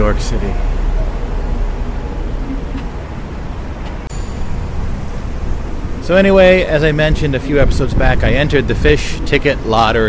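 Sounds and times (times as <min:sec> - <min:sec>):
tour bus engine idling and creeping forward in city traffic: 0:00.0 - 0:09.1
city street noise: 0:00.0 - 0:10.0
speech: 0:00.1 - 0:00.8, 0:06.1 - 0:10.0.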